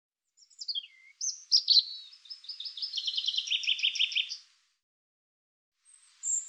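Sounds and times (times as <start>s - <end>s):
European robin singing: 0.3s - 4.5s, 5.8s - 6.4s.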